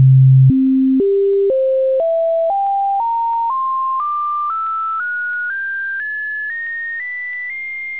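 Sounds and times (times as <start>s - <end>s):
harmonic tones: 0.0s - 5.9s.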